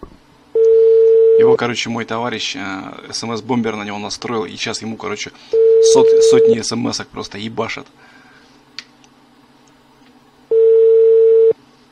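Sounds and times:
phone ringback tone on an unanswered call: 0.6s - 1.5s, 5.6s - 6.6s, 10.5s - 11.6s
speech: 1.4s - 8.1s.

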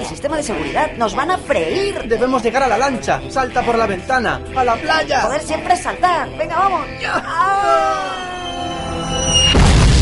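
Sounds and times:
speech: 0.0s - 8.2s
mortar shell falling whistle tone: 7.6s - 9.6s.

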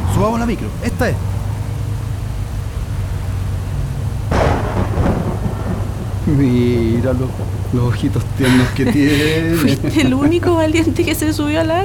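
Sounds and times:
heavy rain: 0.0s - 11.8s
thunder rumbling: 0.0s - 11.8s
speech: 0.2s - 1.4s, 6.3s - 11.8s
laughter: 8.1s - 11.1s.

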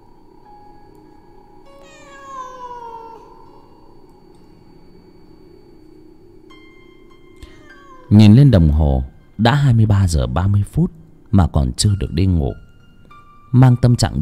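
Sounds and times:
faint steady hum: 0.0s - 14.2s
cat wailing outside a window: 1.6s - 4.0s, 7.4s - 8.4s
speech: 8.1s - 12.6s, 13.5s - 14.2s.

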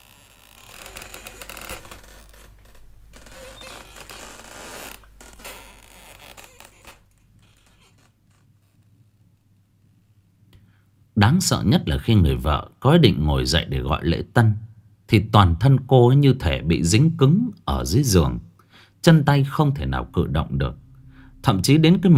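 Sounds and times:
rope creaking against a wooden roof beam under a heavy weight: 0.0s - 9.5s
speech: 11.3s - 20.8s, 21.4s - 22.1s.

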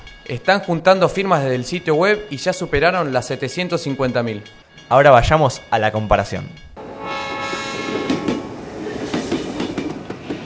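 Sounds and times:
speech: 0.3s - 6.7s
train running on rails: 6.8s - 10.4s.

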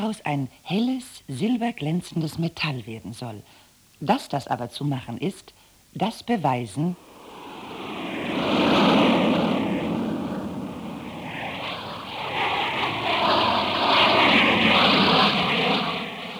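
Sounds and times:
speech: 0.0s - 7.1s
airplane in flight roaring: 7.0s - 16.3s.

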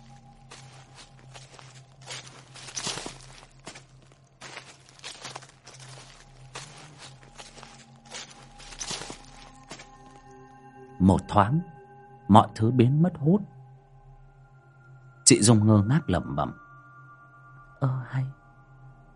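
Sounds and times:
shuffling footsteps along the side of a house at night: 0.0s - 10.2s
speech: 11.0s - 13.6s, 15.3s - 16.6s, 17.8s - 18.4s.

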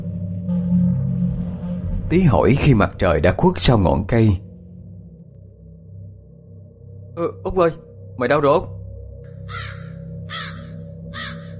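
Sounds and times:
steady low hum: 0.0s - 11.5s
speech: 2.1s - 4.4s, 7.2s - 8.8s, 9.5s - 9.8s
crows cawing overhead at dusk: 9.3s - 11.5s.

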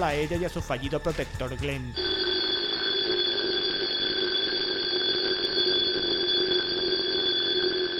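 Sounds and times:
speech: 0.0s - 2.3s
alarm clock ringing: 1.9s - 7.9s.

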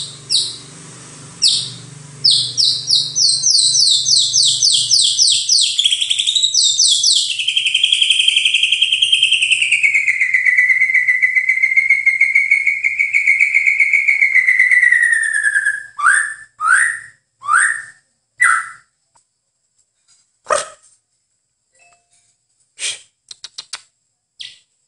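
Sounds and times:
White-rumped shama song with sustained wavering whistle: 0.0s - 0.7s, 1.4s - 19.0s, 24.4s - 24.8s.

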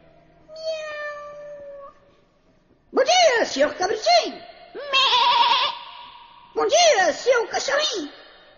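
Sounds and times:
cat meowing: 0.5s - 2.0s, 4.8s - 5.7s
speech: 3.6s - 5.2s, 6.6s - 8.2s.

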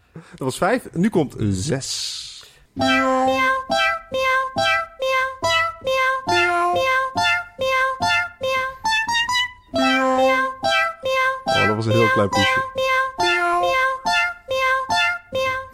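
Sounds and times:
speech: 0.2s - 4.2s, 12.1s - 12.9s
cat meowing in high tonal meows: 2.8s - 8.8s, 9.8s - 15.7s.

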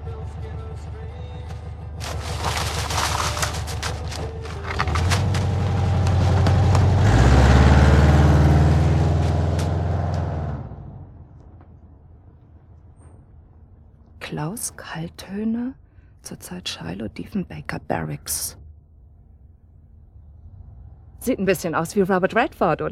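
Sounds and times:
car driving off with loud engine accelerating: 0.0s - 11.6s, 20.0s - 21.4s
speech: 14.4s - 18.6s, 21.2s - 22.8s.

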